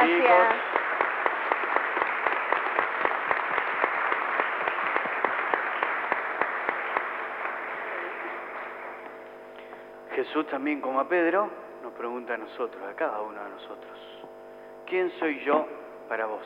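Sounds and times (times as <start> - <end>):
large crowd applauding: 0.0 - 9.2
speech: 10.2 - 14.2, 14.9 - 16.4.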